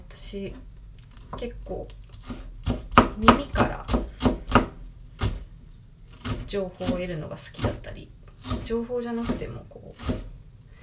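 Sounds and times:
speech: 0:00.3 - 0:00.7, 0:01.3 - 0:02.5, 0:03.2 - 0:04.0, 0:06.5 - 0:10.3
knife mincing onion on cutting board: 0:02.2 - 0:05.4, 0:06.1 - 0:07.8, 0:08.4 - 0:10.8.

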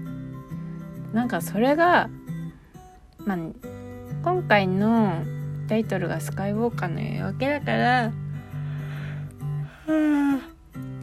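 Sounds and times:
speech: 0:01.1 - 0:02.2, 0:03.2 - 0:08.2, 0:09.9 - 0:10.5
person yawning with voiced groaning tones: 0:09.7 - 0:10.6.

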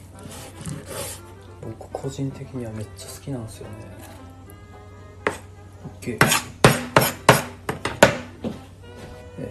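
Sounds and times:
low hum: 0:00.0 - 0:09.5
speech: 0:02.0 - 0:04.1, 0:06.0 - 0:06.5
knife chopping chicken for curry on a cutting board: 0:05.2 - 0:08.6.

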